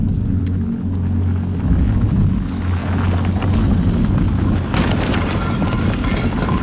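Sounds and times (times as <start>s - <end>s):
deep rumble: 0.0s - 6.6s
falling rocks clattering: 4.6s - 6.6s
small explosion: 4.7s - 6.6s.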